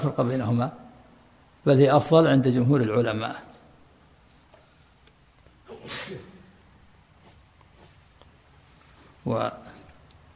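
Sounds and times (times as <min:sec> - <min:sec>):
speech: 0:00.0 - 0:00.8, 0:01.6 - 0:03.5, 0:09.2 - 0:09.7
sharp loud sneeze: 0:05.6 - 0:06.6.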